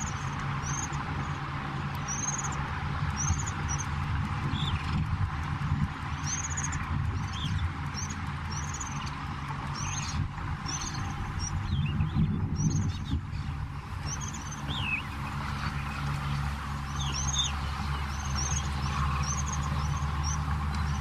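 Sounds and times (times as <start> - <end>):
Superb starling song of whistled notes and descending chirps: 0.0 - 1.4, 2.0 - 3.9, 6.2 - 9.1, 9.7 - 13.2, 14.0 - 20.9
low rumbling noise: 0.0 - 20.9.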